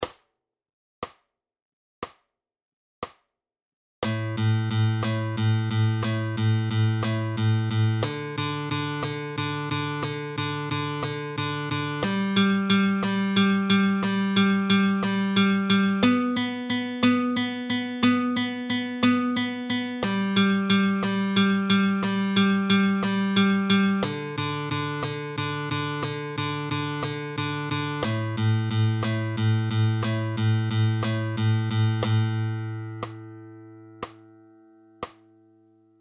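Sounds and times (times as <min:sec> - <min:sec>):
flamenco guitar alzapua thumb strokes: 0:04.0 - 0:34.4.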